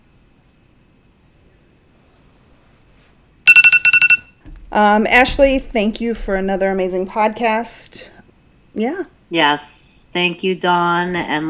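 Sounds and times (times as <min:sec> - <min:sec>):
timer alarm with sharp electronic beeps: 0:03.5 - 0:04.4
speech: 0:04.8 - 0:08.2, 0:08.8 - 0:11.4.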